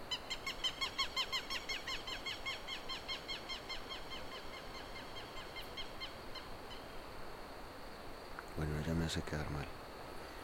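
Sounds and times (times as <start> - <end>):
faint bird calls outdoors: 0.0 - 7.0
insects chirping in fast even pulses: 0.0 - 10.4
speech: 9.1 - 9.8.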